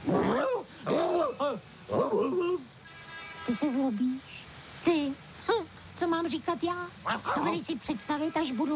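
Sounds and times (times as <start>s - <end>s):
man imitating dog barks and growls: 0.0s - 2.7s, 7.0s - 7.7s
speech: 3.5s - 5.0s, 6.2s - 8.7s.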